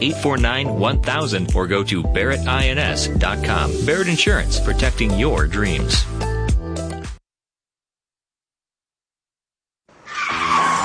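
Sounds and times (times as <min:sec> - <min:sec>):
speech: 0:00.0 - 0:06.3
car brakes screeching: 0:10.0 - 0:10.8.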